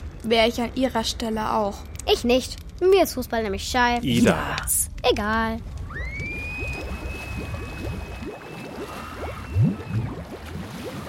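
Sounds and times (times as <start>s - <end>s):
speech: 0.2s - 5.7s
thin steady whistle-like tone: 5.9s - 10.3s
water sloshing and gurgling in a hot spring: 6.1s - 11.0s.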